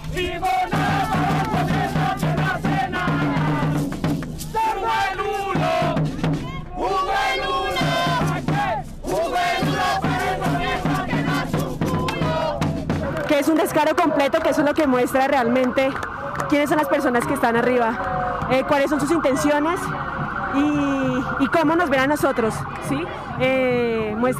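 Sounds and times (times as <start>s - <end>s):
large street protest crowd chanting in unison: 0.0s - 3.9s, 4.5s - 14.9s
speech: 13.4s - 24.3s.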